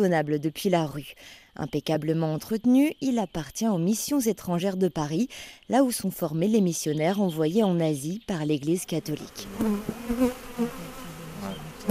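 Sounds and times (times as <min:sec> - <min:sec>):
speech: 0:00.0 - 0:10.8
bees buzzing around beehives in a park in Paris: 0:08.9 - 0:11.8.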